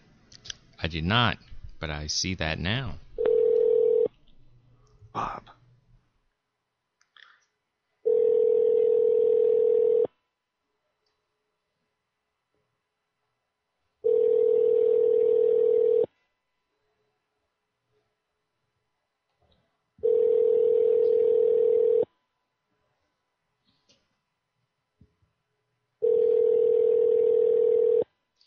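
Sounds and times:
speech: 0.8 - 3.0, 5.2 - 5.6
buzzy telephone ringback tones with no answer: 3.2 - 4.1, 8.0 - 10.1, 14.0 - 16.1, 20.0 - 22.1, 26.0 - 28.1.

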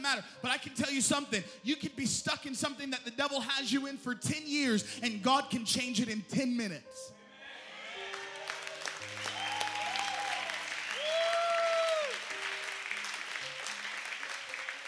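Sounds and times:
speech: 0.1 - 7.2
audience applause during a church sermon: 8.0 - 14.8.

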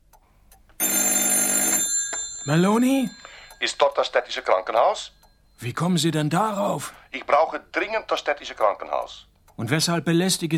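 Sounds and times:
telephone bell ringing in an office: 0.8 - 5.1
speech: 2.5 - 10.5.

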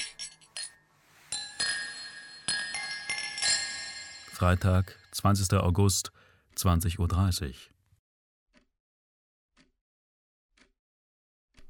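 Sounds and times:
glasses clinking in a toast: 0.0 - 5.2
speech: 4.4 - 7.7.

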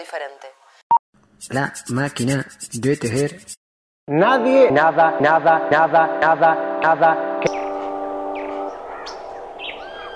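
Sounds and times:
speech: 0.0 - 0.6, 1.4 - 7.6
birds chirping: 7.5 - 10.1.

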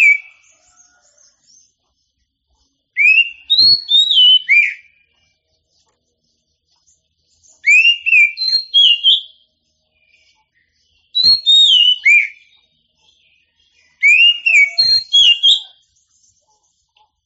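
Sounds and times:
Oriental magpie-robin singing loud clear whistled phrases: 0.0 - 1.7, 2.9 - 5.2, 7.3 - 16.7.

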